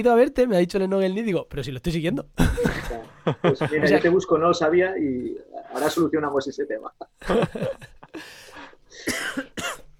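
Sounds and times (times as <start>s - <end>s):
speech: 0.0s - 9.8s
laughter: 2.4s - 3.9s, 7.0s - 8.3s
harsh raspy coughs: 8.9s - 9.9s.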